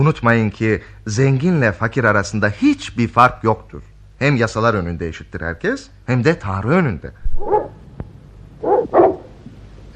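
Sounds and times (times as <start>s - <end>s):
speech: 0.0s - 7.8s
dogs barking: 7.3s - 7.8s, 8.6s - 9.4s.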